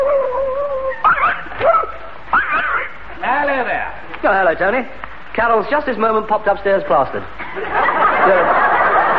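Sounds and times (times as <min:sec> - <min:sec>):
watchdog whining: 0:00.0 - 0:03.0
watchdog barking and yipping: 0:01.0 - 0:03.0
speech: 0:03.6 - 0:08.6
laughter: 0:07.4 - 0:09.1.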